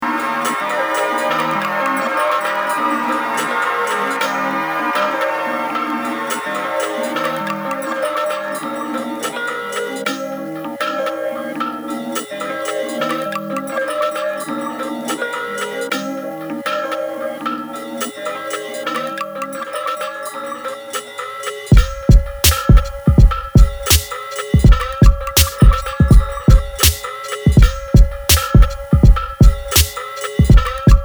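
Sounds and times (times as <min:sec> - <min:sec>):
ending chime: 0:00.0 - 0:31.0.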